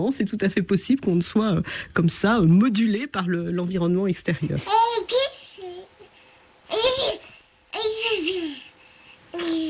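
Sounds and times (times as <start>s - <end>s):
speech: 0.0s - 5.4s
baby babbling and cooing: 4.7s - 9.6s.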